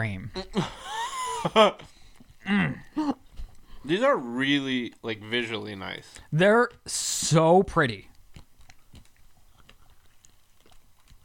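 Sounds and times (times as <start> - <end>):
speech: 0.0 - 0.8, 1.4 - 3.2, 3.8 - 8.1
chewing a soft chocolate-covered glazed donut: 1.8 - 7.0, 7.9 - 11.2.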